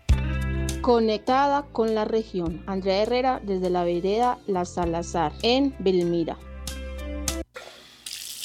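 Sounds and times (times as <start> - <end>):
speech: 0.8 - 6.5
water running from an opened tap: 7.6 - 8.4.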